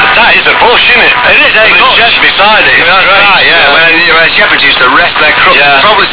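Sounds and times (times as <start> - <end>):
local FM radio scan of different transmitter types: 0.0 - 6.1.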